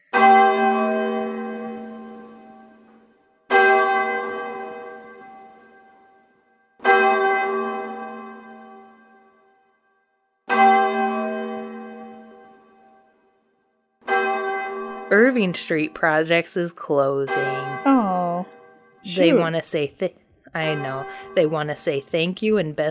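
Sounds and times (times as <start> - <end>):
single church bell tolling for mourning: 0.0 - 9.6, 10.5 - 13.2, 14.1 - 16.1, 17.2 - 17.9, 20.6 - 22.2
speech: 15.1 - 18.0, 19.0 - 22.8.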